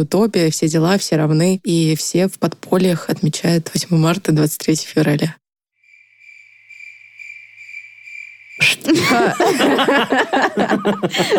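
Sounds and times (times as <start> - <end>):
speech: 0.0 - 5.4, 8.6 - 11.3
grasshopper chirping in a high continuous trill: 5.8 - 9.4
laughter: 8.8 - 11.3.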